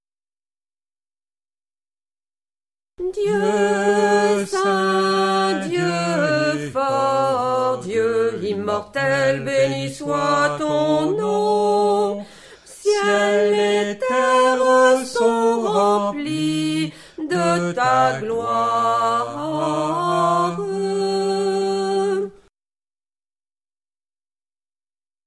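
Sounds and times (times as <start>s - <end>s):
tenor and bass choir singing: 3.0s - 22.4s.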